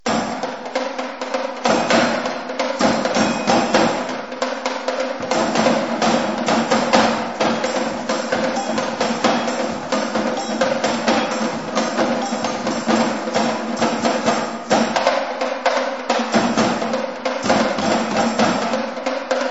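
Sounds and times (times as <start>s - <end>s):
bongo drums: 0.0s - 19.5s.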